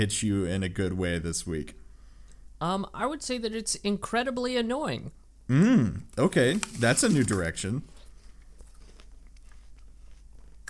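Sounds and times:
speech: 0:00.0 - 0:01.8, 0:02.6 - 0:07.9
low hum: 0:00.0 - 0:10.6
munching and crunching on food: 0:06.1 - 0:10.6.

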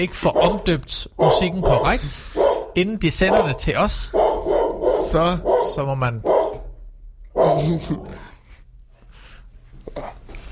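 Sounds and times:
speech: 0:00.0 - 0:06.4, 0:07.4 - 0:08.3
dog barking in a studio: 0:00.3 - 0:06.7, 0:07.3 - 0:07.8.

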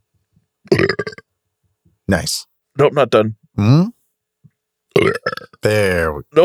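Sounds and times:
loud voiced throaty burp: 0:00.7 - 0:01.2, 0:03.6 - 0:03.9, 0:05.0 - 0:06.4
speech: 0:02.1 - 0:04.0, 0:05.6 - 0:06.4.

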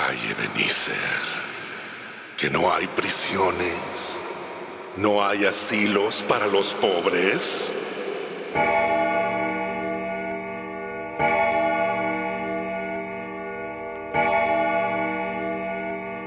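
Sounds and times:
speech: 0:00.1 - 0:01.6, 0:02.4 - 0:04.4, 0:05.0 - 0:09.0
large clock bell tolling: 0:08.5 - 0:16.2.

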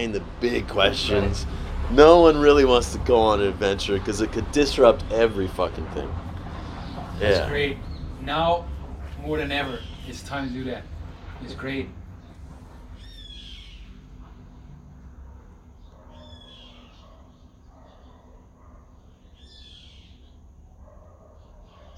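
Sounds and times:
speech: 0:00.0 - 0:06.3, 0:07.2 - 0:12.0
low rumble: 0:00.0 - 0:15.7
birds chirping outdoors: 0:00.0 - 0:21.9.

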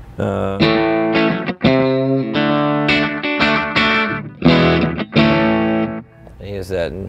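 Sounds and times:
speech: 0:00.2 - 0:01.0, 0:06.7 - 0:07.0
distorted electric guitar chords through analog delay pedal: 0:00.6 - 0:06.3.

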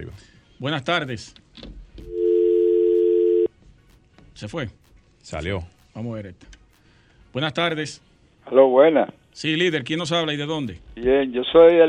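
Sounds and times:
speech: 0:00.0 - 0:01.7, 0:04.4 - 0:06.6, 0:07.3 - 0:11.8
telephone line tone when taking a call: 0:02.1 - 0:03.5.

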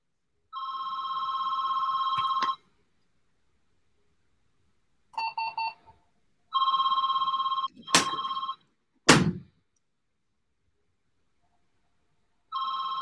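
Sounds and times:
fax machine phone line ringing: 0:00.6 - 0:02.6, 0:06.5 - 0:08.6, 0:12.5 - 0:13.0
sharp knocks: 0:09.1 - 0:09.5.

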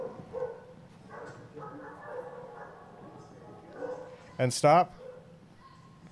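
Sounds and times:
dog barking at another dog: 0:00.0 - 0:04.2, 0:05.0 - 0:05.3
steady murmur of noise: 0:00.0 - 0:06.1
speech: 0:04.4 - 0:05.0.

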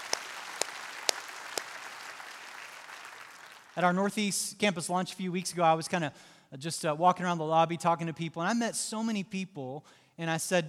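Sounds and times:
church audience clapping: 0:00.0 - 0:04.0
speech: 0:03.8 - 0:10.6.

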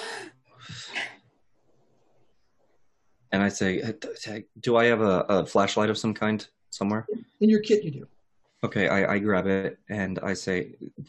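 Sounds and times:
person acting out a sharp startled gasp: 0:00.0 - 0:01.2
speech: 0:03.3 - 0:11.0.

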